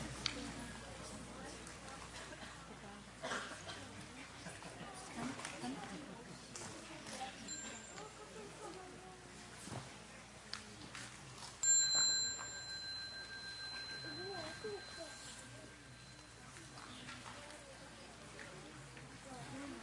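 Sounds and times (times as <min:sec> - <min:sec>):
soft voices murmuring: 0:00.0 - 0:19.8
small meditation bell ringing: 0:07.5 - 0:08.5, 0:11.6 - 0:17.0.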